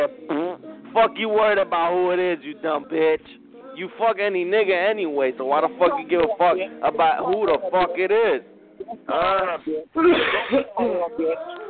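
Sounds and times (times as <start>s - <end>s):
speech: 1.0s - 11.6s
raspy throat clearing: 10.0s - 11.1s.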